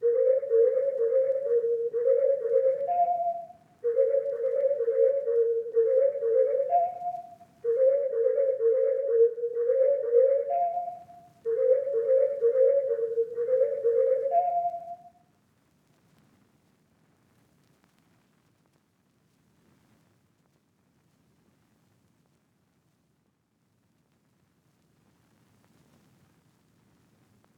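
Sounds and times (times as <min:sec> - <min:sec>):
whistle melody at 126 BPM in A# minor: 0:00.0 - 0:15.1.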